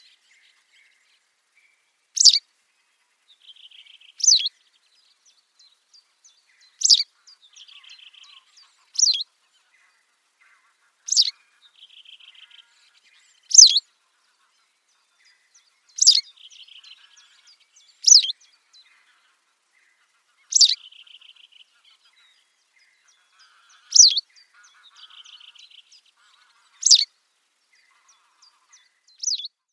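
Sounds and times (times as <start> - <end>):
white wagtail calls: 2.2 - 2.4, 3.5 - 4.5, 6.4 - 13.8, 15.2 - 27.1, 27.8 - 29.5.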